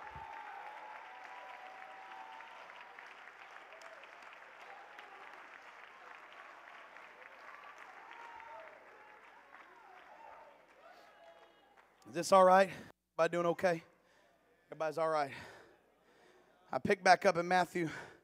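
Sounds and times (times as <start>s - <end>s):
crowd of people clapping their hands: 0.0s - 12.4s
speech: 12.1s - 13.9s, 14.8s - 15.5s, 16.7s - 18.1s.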